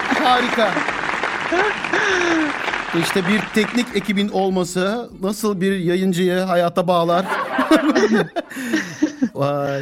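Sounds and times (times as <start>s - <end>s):
applause: 0.0s - 4.4s
speech: 0.2s - 0.9s, 1.5s - 9.8s
laughter: 1.5s - 2.7s, 7.2s - 9.6s.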